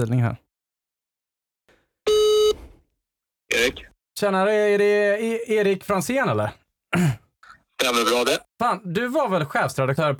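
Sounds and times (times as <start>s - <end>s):
speech: 0.0s - 0.4s, 3.6s - 7.2s, 7.8s - 10.1s
telephone ringback tone while placing a call: 2.1s - 2.6s.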